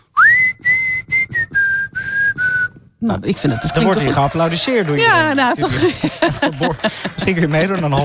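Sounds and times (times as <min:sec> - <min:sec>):
person whistling loudly and shrilly: 0:00.1 - 0:02.8
speech: 0:03.0 - 0:08.0
laughter: 0:03.4 - 0:08.0.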